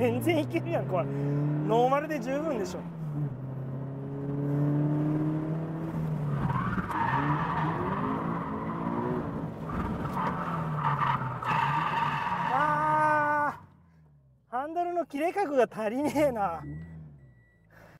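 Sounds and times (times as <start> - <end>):
speech: 0.0 - 3.4, 15.1 - 16.9
nearly stock Subaru BRZ engine droning and revving at Suzuka Twin Circuit: 0.0 - 14.5
nearly stock Subaru BRZ tires skidding and squealing while drifting: 6.0 - 13.6.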